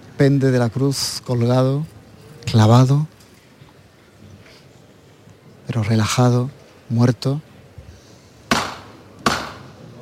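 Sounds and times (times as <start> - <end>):
speech: 0.2 - 3.1, 5.7 - 7.5
hammer knocking as signal for procession float bearers: 8.5 - 9.6.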